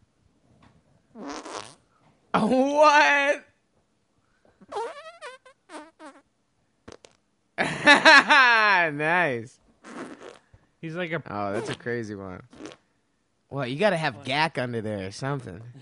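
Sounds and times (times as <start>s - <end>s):
wet sputtering armpit fart: 1.1s - 1.8s, 4.6s - 7.2s, 9.8s - 10.5s, 11.6s - 11.9s, 12.5s - 12.8s
speech: 2.4s - 3.5s, 8.0s - 9.6s, 10.8s - 12.6s, 13.5s - 15.8s
laughter: 7.6s - 8.9s.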